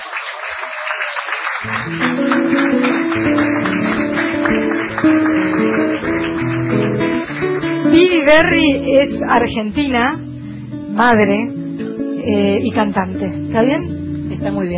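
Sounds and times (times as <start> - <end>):
audience clapping: 0.0 - 8.6
speech: 0.6 - 3.4, 8.3 - 10.3, 11.0 - 11.6, 12.2 - 14.7.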